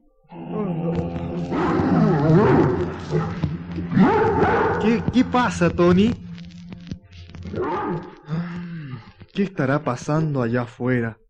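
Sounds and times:
dog growling: 0:00.3 - 0:05.1
speech: 0:04.8 - 0:06.2, 0:09.4 - 0:11.2.

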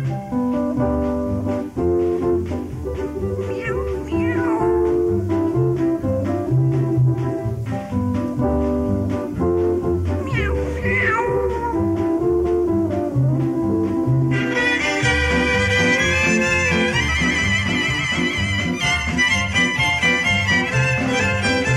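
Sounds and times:
children's song with steady musical accompaniment: 0:00.0 - 0:21.7
kitten meowing in a children's song: 0:03.4 - 0:05.2, 0:10.2 - 0:12.1.

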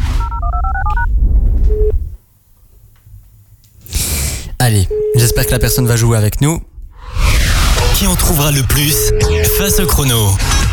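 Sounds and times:
low rumble: 0:00.0 - 0:02.2, 0:06.6 - 0:09.8
touch-tone keypad dialing a number to a switchboard: 0:00.2 - 0:01.1, 0:01.7 - 0:02.0, 0:04.9 - 0:05.9
speech: 0:05.3 - 0:06.7, 0:08.0 - 0:10.6.

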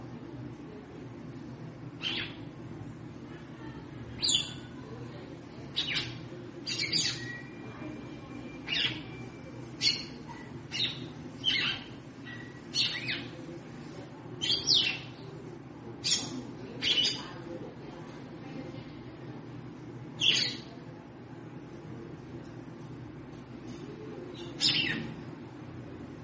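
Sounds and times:
low steady hum: 0:00.0 - 0:26.2
female red-cowled cardinal chirping: 0:02.0 - 0:02.4, 0:05.8 - 0:07.7, 0:08.6 - 0:13.3, 0:20.2 - 0:20.7, 0:24.3 - 0:25.2.

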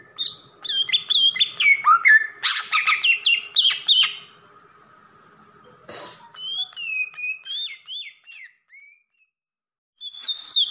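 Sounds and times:
Oriental magpie-robin singing: 0:00.2 - 0:04.2, 0:06.4 - 0:09.3, 0:10.0 - 0:10.6.

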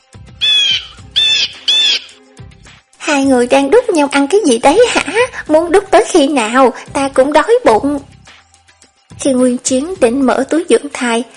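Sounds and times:
unhappy small bird squawking: 0:00.4 - 0:02.2
speech: 0:03.1 - 0:08.1, 0:09.2 - 0:11.3.

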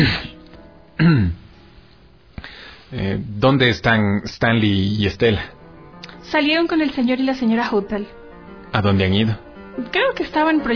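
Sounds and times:
man giving an embarrassed cough: 0:00.0 - 0:00.4, 0:01.0 - 0:01.4
speech: 0:01.0 - 0:01.4, 0:02.9 - 0:05.6, 0:06.3 - 0:10.7.

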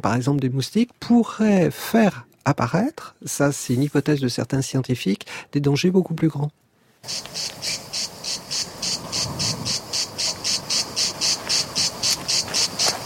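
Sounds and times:
speech: 0:00.0 - 0:07.7
cicada singing in rhythmic buzzing pulses: 0:07.0 - 0:13.0.

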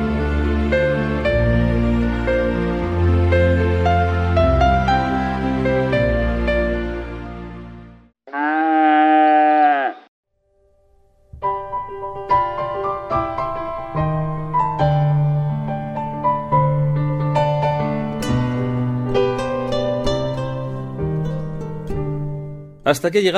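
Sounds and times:
calm instrumental music with sustained and plucked notes: 0:00.0 - 0:08.1, 0:10.5 - 0:23.3
cow mooing: 0:08.3 - 0:10.1.

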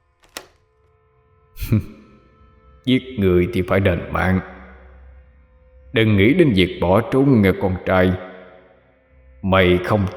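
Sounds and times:
door lock clicking shut: 0:00.1 - 0:00.6
heavier low thunk of the door latch: 0:00.2 - 0:00.6
speech: 0:01.7 - 0:02.0, 0:02.8 - 0:04.6, 0:05.9 - 0:08.3, 0:09.4 - 0:10.1.

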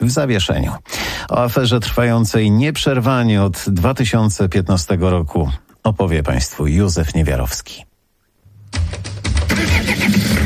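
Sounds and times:
speech: 0:00.1 - 0:07.9
diesel car engine starting: 0:09.5 - 0:10.4.

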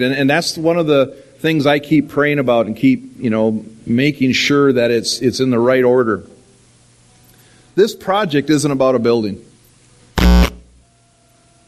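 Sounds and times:
speech: 0:00.0 - 0:06.3, 0:07.8 - 0:09.5
harsh buzzer blast: 0:10.2 - 0:10.8.

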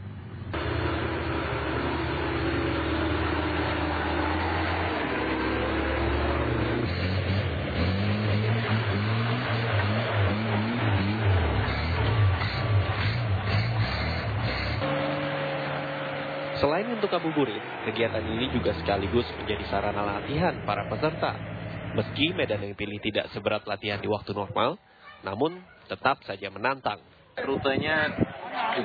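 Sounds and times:
around fifty jeep engines idling at an off-road gathering: 0:00.0 - 0:24.0
speech: 0:16.6 - 0:28.8.

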